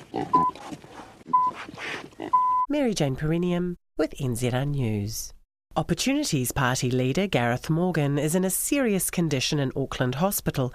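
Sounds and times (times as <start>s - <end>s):
pig grunting and oinking: 0.0s - 2.5s
speech: 0.2s - 0.5s, 2.7s - 10.7s.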